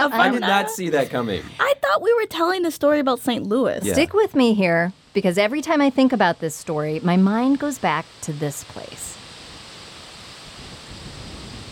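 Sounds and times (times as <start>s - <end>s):
speech: 0.0s - 9.2s
wind rushing through cottonwood trees: 4.2s - 11.6s.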